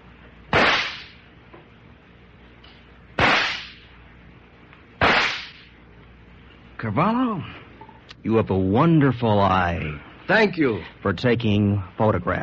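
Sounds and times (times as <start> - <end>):
revolver shots fired during target practice: 0.5 - 1.2, 3.2 - 3.9, 5.0 - 5.7
speech: 6.8 - 7.6, 8.2 - 12.4.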